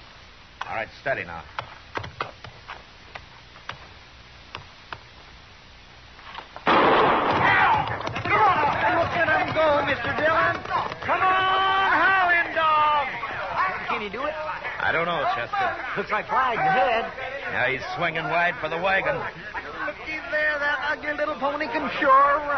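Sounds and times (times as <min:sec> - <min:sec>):
speech: 0:00.8 - 0:01.6, 0:14.0 - 0:19.6, 0:20.9 - 0:22.5
gunshot to start a horse race: 0:06.7 - 0:08.0
crowd noise with voices: 0:07.1 - 0:22.5.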